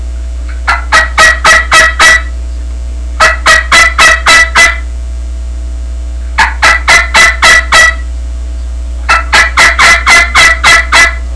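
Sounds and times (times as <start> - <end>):
turkey longspur inverted v yelps: 0.7 - 2.3, 3.2 - 4.9, 6.4 - 8.1, 9.1 - 11.3.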